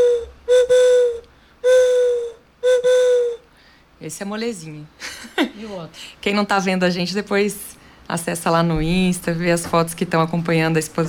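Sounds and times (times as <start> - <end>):
bird-call whistle imitating a juriti dove call: 0.0 - 3.4
speech: 4.1 - 11.0.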